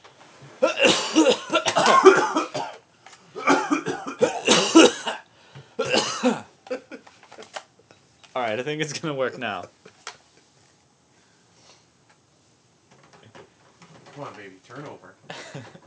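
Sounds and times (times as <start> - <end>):
man coughing into a small plastic game cartridge: 0.6 - 2.8, 3.4 - 7.0
speech: 8.4 - 9.8, 14.2 - 15.8.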